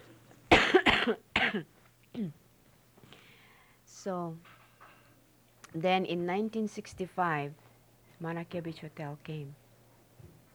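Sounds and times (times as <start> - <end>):
faint low hum: 0.0 - 10.5
person coughing harshly: 0.5 - 2.4
speech: 1.0 - 2.4, 4.0 - 4.5, 5.7 - 7.6, 8.2 - 9.6.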